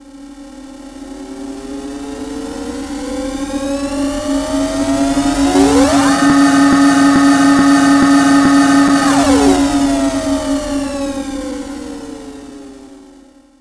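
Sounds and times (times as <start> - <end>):
airlock warming up: 3.5 - 12.7.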